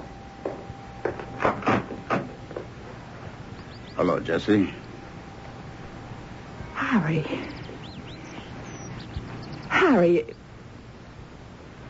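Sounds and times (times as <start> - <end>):
faint steady hum: 0.0 - 11.8
front door opening with latch and handle clunks and rattles: 0.5 - 3.0
speech: 4.0 - 4.8, 7.0 - 7.6, 9.9 - 10.4.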